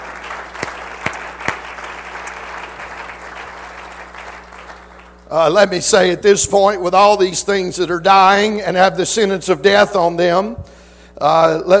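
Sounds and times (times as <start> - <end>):
church audience clapping hands: 0.0 - 5.3
speech: 5.3 - 11.7.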